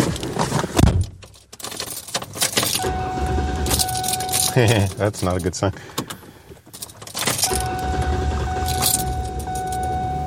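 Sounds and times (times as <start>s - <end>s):
clunks: 0.0s - 10.1s
car engine started after home repair work and running: 0.0s - 10.2s
keys jangling: 1.2s - 2.9s, 3.6s - 5.6s, 6.7s - 7.7s, 8.6s - 10.0s
speech: 4.6s - 6.0s.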